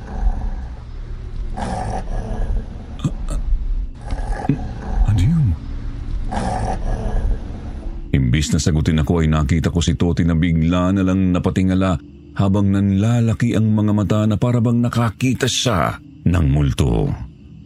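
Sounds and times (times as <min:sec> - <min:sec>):
dog growling: 0:00.0 - 0:08.1
speech: 0:08.4 - 0:17.2.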